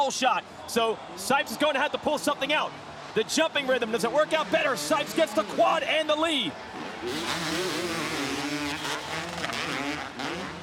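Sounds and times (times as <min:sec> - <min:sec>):
speech: 0:00.0 - 0:08.0
two-stroke motocross engines revving during a race: 0:03.8 - 0:10.6.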